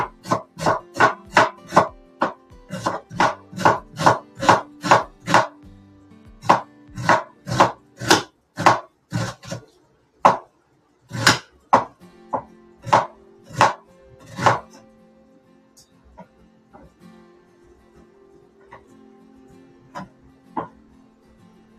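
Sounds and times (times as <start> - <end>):
knife finely chopping onion: 0.0 - 5.6, 6.4 - 10.5, 11.1 - 14.8, 19.9 - 20.8.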